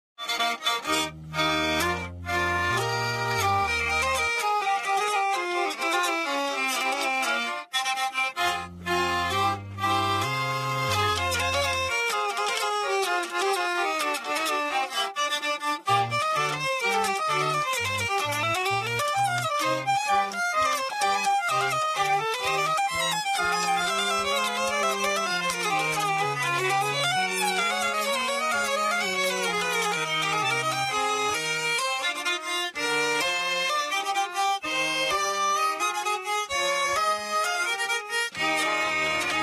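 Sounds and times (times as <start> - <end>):
hurdy-gurdy variant: 0.2 - 39.4.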